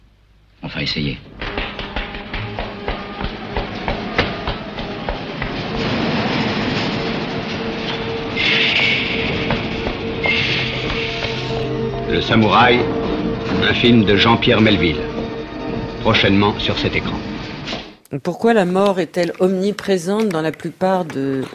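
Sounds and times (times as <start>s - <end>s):
speech: 0.8s - 1.4s, 12.2s - 15.1s, 16.0s - 17.2s, 18.1s - 21.5s
metro train wheels clacking over rail joints underground: 1.3s - 17.7s
faint high metallic squeals: 1.7s - 18.0s.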